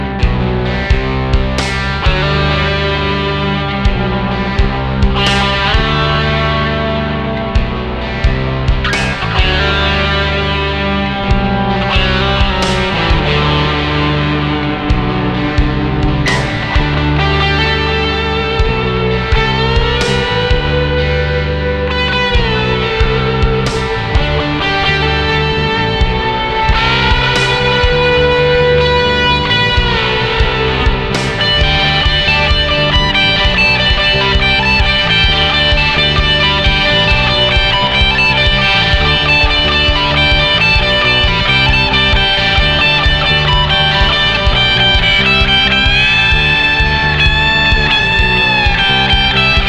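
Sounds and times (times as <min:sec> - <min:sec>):
classic tube drive distortion: 0:00.2 - 0:49.6.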